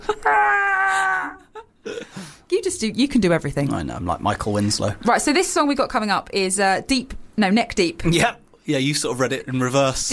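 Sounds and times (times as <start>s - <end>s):
voice imitating a man screaming while falling off a tower: 0.0s - 1.5s
speech: 2.7s - 10.1s.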